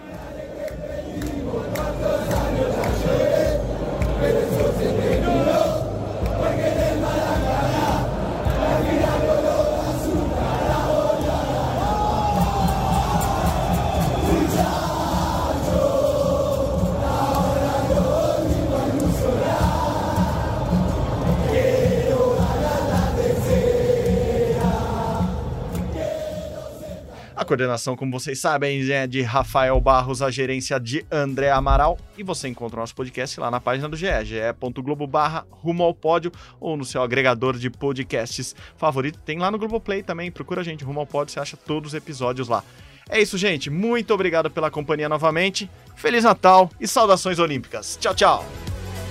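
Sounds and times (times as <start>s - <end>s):
large crowd of Argentine football fans chanting celebration songs: 0.0s - 27.4s
speech: 27.5s - 48.8s.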